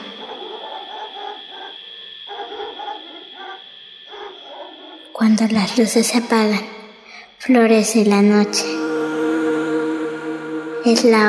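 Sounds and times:
dog barking: 0.0 - 5.1
steady nighttime hum: 0.0 - 11.2
speech: 5.2 - 6.7, 7.4 - 8.8, 10.8 - 11.2.

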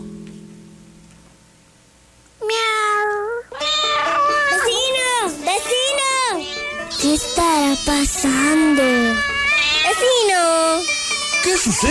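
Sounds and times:
many cats meowing: 2.5 - 5.1, 5.8 - 11.9.

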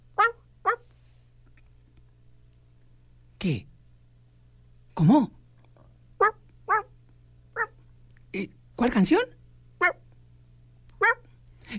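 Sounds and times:
faint steady low hum: 0.0 - 11.7
small dog barking: 0.2 - 0.9, 6.2 - 6.9, 7.6 - 7.8, 9.8 - 10.0, 11.0 - 11.3
speech: 3.4 - 3.7, 5.0 - 5.4, 8.4 - 10.0.

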